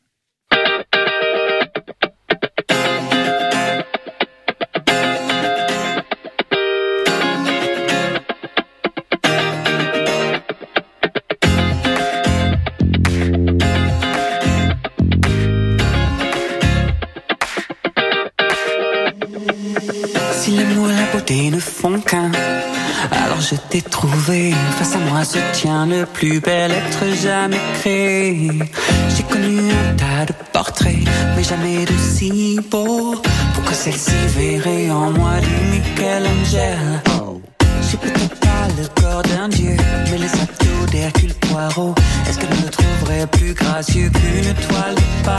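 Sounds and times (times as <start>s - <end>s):
full-band song with distorted guitar and driving beat on radio: 0.5s - 45.3s
speech: 23.5s - 37.2s, 38.0s - 45.3s.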